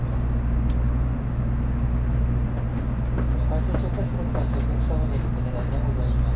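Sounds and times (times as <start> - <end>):
Tokaido Shinkansen Kodama bullet train cabin running noise: 0.0 - 6.3.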